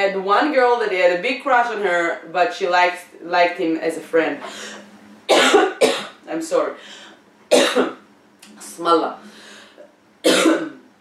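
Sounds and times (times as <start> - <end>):
speech: 0.0 - 9.3, 10.2 - 10.8
faint noise: 0.0 - 10.9
dry harsh cough: 5.3 - 6.2, 7.5 - 8.0, 10.3 - 10.8.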